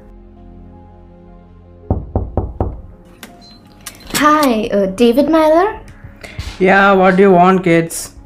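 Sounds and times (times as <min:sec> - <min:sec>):
firm heavy knocks on a wooden door: 0:01.9 - 0:02.9
speech: 0:04.2 - 0:05.8, 0:06.6 - 0:08.1.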